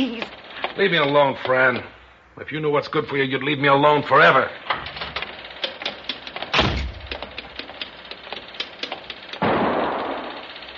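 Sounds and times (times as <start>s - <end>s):
speech: 0.8s - 4.7s
sharp bang: 6.5s - 7.1s, 9.4s - 10.5s
loud gunshot with tail: 6.6s - 7.0s, 9.4s - 10.4s.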